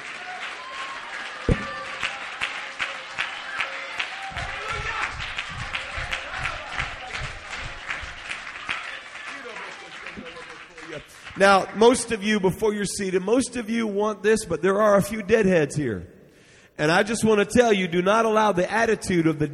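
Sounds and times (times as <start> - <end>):
crowd clapping: 0.0 - 12.5
speech: 11.4 - 16.2, 16.8 - 19.5.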